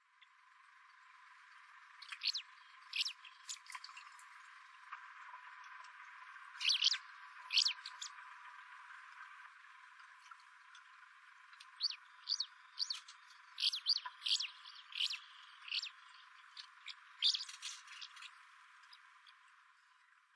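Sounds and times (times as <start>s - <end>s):
kanmuriumisuzu calling in Tokushima: 2.0s - 3.6s, 6.6s - 8.2s, 11.7s - 19.0s.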